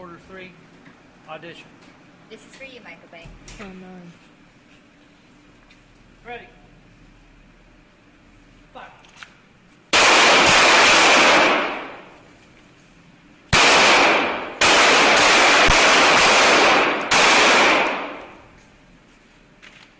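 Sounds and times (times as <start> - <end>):
speech: 1.3 - 4.3, 6.2 - 6.6
gunfire bursts during firearms training: 9.9 - 12.1, 13.5 - 18.4.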